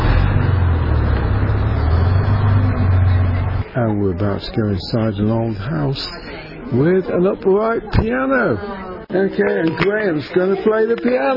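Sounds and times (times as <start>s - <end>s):
double-decker bus engine droning while passing: 0.0s - 6.2s
speech: 3.8s - 11.3s.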